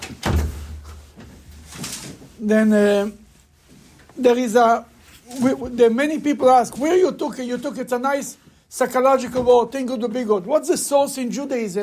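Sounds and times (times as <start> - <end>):
door shutting with a solid thud: 0.0 - 1.0
faint noise: 0.0 - 11.8
speech: 2.4 - 3.2, 4.2 - 11.8.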